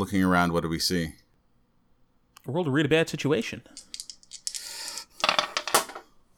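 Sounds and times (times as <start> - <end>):
speech: 0.0 - 1.2, 2.4 - 3.9
dice rolling on a hard table: 3.7 - 6.1.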